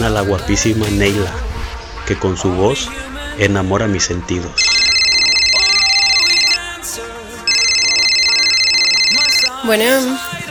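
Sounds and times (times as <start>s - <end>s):
speech: 0.1s - 1.5s, 2.1s - 4.7s, 9.6s - 10.4s
cell phone ringing unanswered with bright electronic tones: 4.6s - 6.6s, 7.5s - 10.3s.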